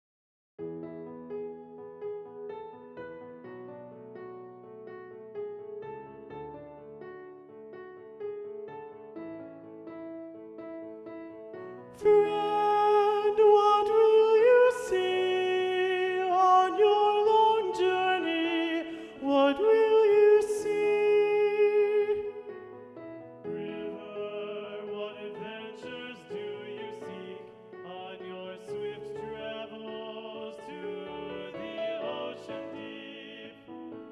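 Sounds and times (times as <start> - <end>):
SATB choir with predominant soprano: 12.0 - 22.5, 23.5 - 34.1.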